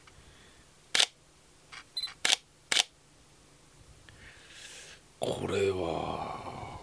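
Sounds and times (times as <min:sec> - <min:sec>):
light handheld mirrorless camera shutter clicks: 0:00.9 - 0:01.2, 0:01.8 - 0:02.9
speech: 0:05.2 - 0:06.4.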